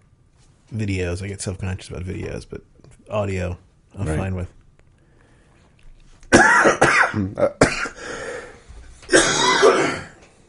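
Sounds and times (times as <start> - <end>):
speech: 0.7 - 4.6, 7.1 - 7.9
person clearing throat with a throaty rasp: 6.3 - 8.0, 9.1 - 10.2
person coughing: 6.3 - 8.1, 9.1 - 10.2.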